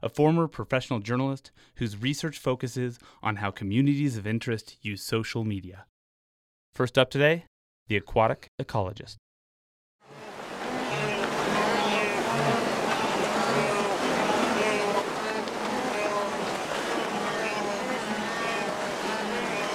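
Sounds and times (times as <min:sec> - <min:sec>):
speech: 0:00.0 - 0:05.9, 0:06.8 - 0:09.2
rushing, splashing river water in East Africa: 0:10.1 - 0:19.7
large herd of wildebeest grunting and moaning crossing a river in East Africa: 0:10.6 - 0:19.7.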